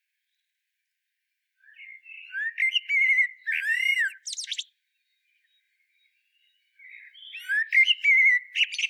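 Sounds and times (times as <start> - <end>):
common blackbird Turdus merula singing: 1.6 - 8.8.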